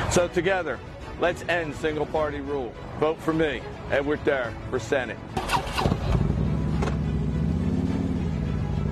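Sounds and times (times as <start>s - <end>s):
speech: 0.1s - 5.5s
motorcycle engine starting and rumbling: 5.3s - 8.9s.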